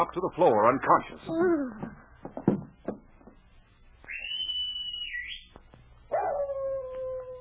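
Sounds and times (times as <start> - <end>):
speech: 0.0 - 2.0
high thin whistling tone: 4.0 - 5.5
white dog-like animal barking on a trail from a mine at night: 6.1 - 6.6.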